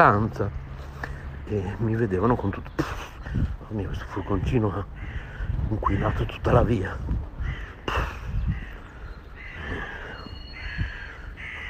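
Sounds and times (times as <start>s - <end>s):
speech: 0.0s - 0.6s, 1.5s - 8.6s
harsh raspy bird calls on a street in the morning: 0.0s - 11.6s
low outdoor rumble: 0.0s - 11.6s.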